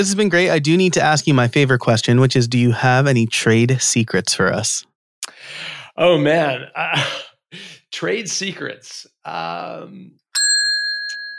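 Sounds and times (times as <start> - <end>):
speech: 0.0 - 10.2
bell struck with a bright clear ringing tone: 10.4 - 11.3.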